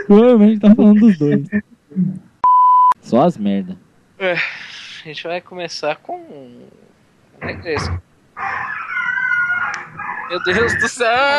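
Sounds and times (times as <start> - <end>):
speech: 0.1 - 1.7, 3.1 - 6.8, 7.4 - 8.8, 10.3 - 11.3
dog whining and howling: 8.4 - 10.9.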